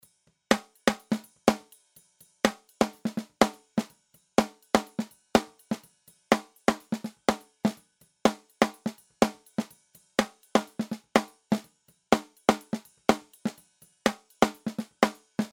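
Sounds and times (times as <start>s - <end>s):
dry snare drum: 0.5s - 15.5s.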